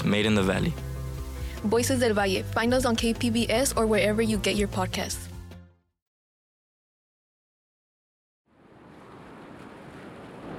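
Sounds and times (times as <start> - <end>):
speech: 0.1 - 0.9, 1.6 - 5.2
ocean waves at a pier: 8.5 - 10.5.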